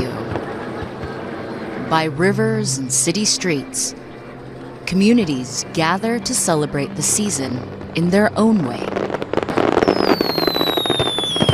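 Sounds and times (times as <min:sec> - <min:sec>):
speech: 0:01.9 - 0:04.0, 0:04.9 - 0:09.1
fireworks exploding at a summer fireworks festival in Tokyo: 0:07.6 - 0:11.5
high firework whistling tone falling in pitch: 0:09.8 - 0:11.5.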